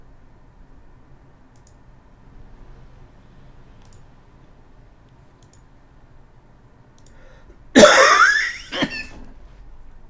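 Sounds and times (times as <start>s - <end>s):
person coughing with a harsh raspy burst: 7.8s - 9.3s.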